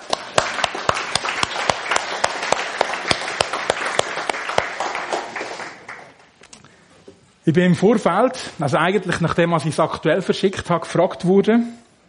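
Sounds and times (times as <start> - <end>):
audience applause: 0.0 - 6.2
speech: 7.5 - 11.8.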